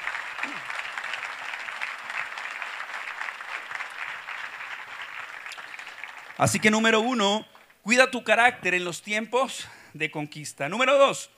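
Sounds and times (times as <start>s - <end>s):
audience applauding: 0.0s - 7.8s
speech: 6.4s - 11.3s.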